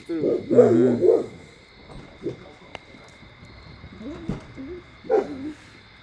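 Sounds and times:
speech: 0:00.0 - 0:01.3
dogs barking: 0:00.0 - 0:01.6, 0:03.9 - 0:05.8
faint murmuring: 0:00.0 - 0:05.9
steady hum: 0:00.0 - 0:06.0.

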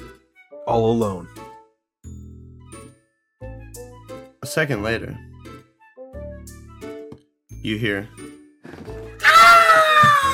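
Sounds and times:
speech: 0:00.7 - 0:01.4, 0:04.5 - 0:05.3, 0:07.6 - 0:08.2
terrible high-pitched scream: 0:09.2 - 0:10.3.

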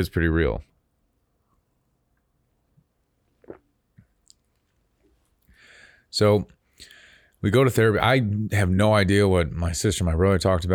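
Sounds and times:
speech: 0:00.0 - 0:00.7, 0:06.1 - 0:10.7
gulp: 0:03.3 - 0:04.4
person sipping coffee: 0:03.3 - 0:04.6
small wet mouth clicks: 0:03.3 - 0:04.7.

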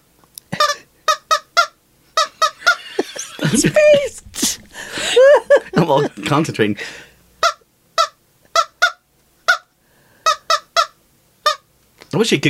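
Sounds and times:
squeezed rubber toy chicken honking: 0:00.6 - 0:02.8, 0:07.5 - 0:09.7, 0:10.3 - 0:11.7
laughter: 0:02.3 - 0:07.0
speech: 0:03.5 - 0:04.5, 0:05.8 - 0:07.1, 0:12.2 - 0:12.4.

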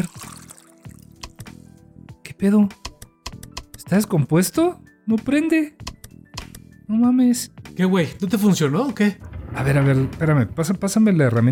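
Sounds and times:
water pouring into an appliance: 0:00.0 - 0:01.2
speech: 0:02.4 - 0:02.8, 0:03.9 - 0:05.8, 0:06.9 - 0:11.4.

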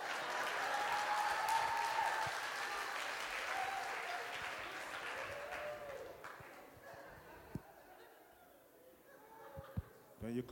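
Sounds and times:
crowd applauding: 0:00.0 - 0:06.8
speech: 0:10.2 - 0:10.4.

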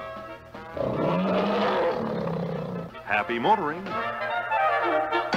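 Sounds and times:
speech: 0:00.8 - 0:01.5, 0:03.1 - 0:05.2
tiger roaring with a rough harmonic growl: 0:00.8 - 0:03.0.

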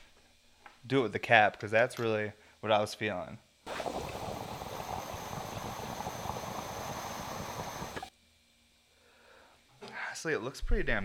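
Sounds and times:
speech: 0:00.9 - 0:03.4, 0:10.2 - 0:11.0
water bubbling through a glass dab rig: 0:03.7 - 0:08.1.

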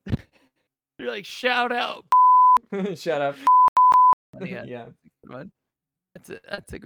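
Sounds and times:
speech: 0:01.0 - 0:02.1, 0:02.7 - 0:03.5, 0:04.4 - 0:05.6, 0:06.2 - 0:06.8
censor bleep over spoken names: 0:02.1 - 0:02.6, 0:03.4 - 0:04.2.

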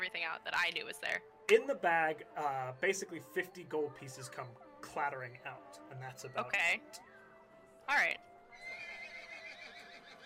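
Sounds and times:
speech: 0:00.3 - 0:07.1, 0:07.9 - 0:08.3
voice imitating an angry horse whinny: 0:08.5 - 0:10.2.

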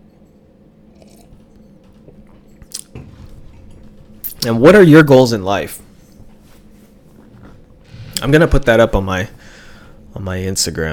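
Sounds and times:
slurp and swallow of coffee: 0:00.9 - 0:01.4
person sipping coffee: 0:00.9 - 0:02.9
speech: 0:04.4 - 0:05.8, 0:08.2 - 0:09.4, 0:10.2 - 0:10.9.

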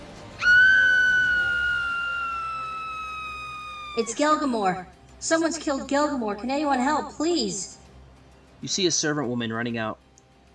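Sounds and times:
woman's shrill scream sound effect: 0:00.4 - 0:04.6
speech: 0:04.0 - 0:07.8, 0:08.6 - 0:10.0.

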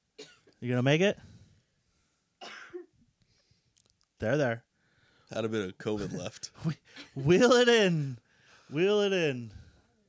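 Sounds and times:
single harsh raspy cough: 0:00.2 - 0:00.6, 0:02.4 - 0:03.0
speech: 0:00.6 - 0:01.3, 0:04.2 - 0:04.7, 0:05.3 - 0:09.6.

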